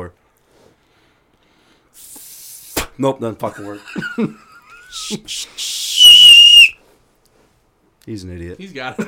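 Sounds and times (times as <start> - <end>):
speech: 3.0 - 5.9, 8.0 - 9.0
loud piercing two-finger whistle: 5.0 - 6.8
breathy airy blows sputtering out: 5.4 - 6.8.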